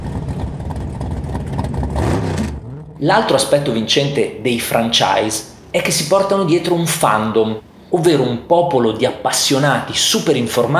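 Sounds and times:
car engine revving hard as the driver floors the accelerator in a street race: 0.0 - 3.8
speech: 3.0 - 10.7.

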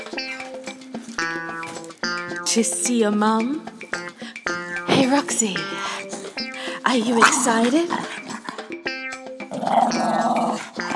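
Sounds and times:
speech: 2.5 - 3.8, 5.0 - 5.9, 6.9 - 8.1
dog growling: 7.1 - 8.6, 9.5 - 10.9.

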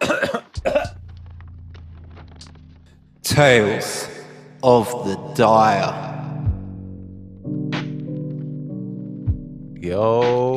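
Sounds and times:
person clearing throat: 0.0 - 1.0
speech: 3.4 - 6.1, 9.8 - 10.5.

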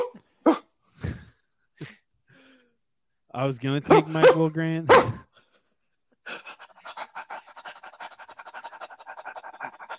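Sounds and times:
speech: 3.4 - 5.3
person imitating dog barks and yips: 3.9 - 5.2.

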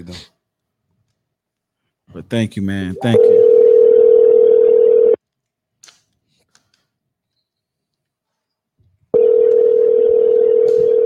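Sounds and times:
speech: 0.0 - 0.4, 2.1 - 3.3
electronic phone ringback tone: 3.0 - 5.2, 9.2 - 11.0.

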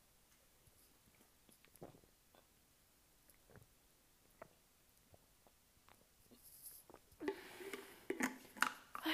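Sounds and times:
person drinking water and swallowing: 1.5 - 2.5, 3.3 - 9.1.

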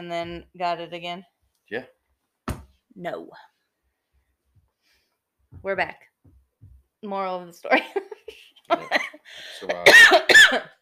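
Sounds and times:
speech: 0.0 - 2.0, 3.0 - 3.5, 5.5 - 6.4, 7.0 - 10.7
person coughing: 9.6 - 10.7.

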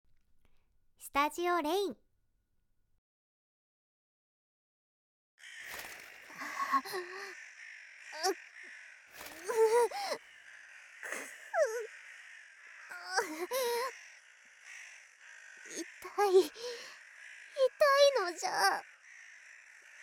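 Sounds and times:
speech: 1.0 - 2.0, 6.8 - 7.4, 16.2 - 17.0, 17.6 - 18.9
crows cawing: 5.4 - 20.0.

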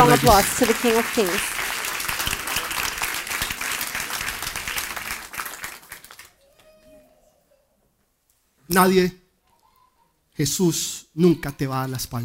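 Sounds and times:
large crowd applauding during a sermon: 0.0 - 6.4
speech: 0.1 - 1.6, 8.7 - 9.2, 10.4 - 12.2.

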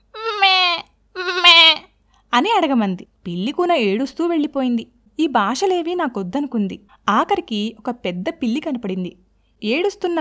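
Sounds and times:
human voice imitating a young goat bleating: 0.0 - 1.9
speech: 2.4 - 10.1.

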